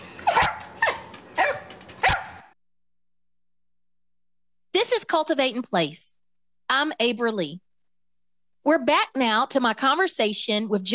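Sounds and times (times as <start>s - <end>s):
dog barking: 0.2s - 2.5s
speech: 5.1s - 6.1s, 6.7s - 7.6s, 8.6s - 10.9s.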